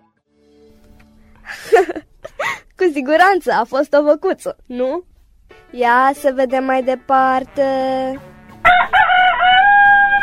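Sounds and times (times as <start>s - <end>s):
speech: 1.8s - 2.1s, 2.9s - 5.1s, 5.7s - 8.3s
rooster crowing: 8.6s - 10.2s.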